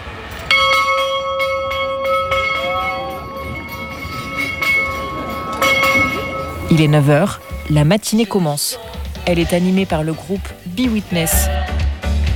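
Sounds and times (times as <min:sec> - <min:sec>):
church bell ringing: 0:00.0 - 0:08.7
speech: 0:06.8 - 0:11.5.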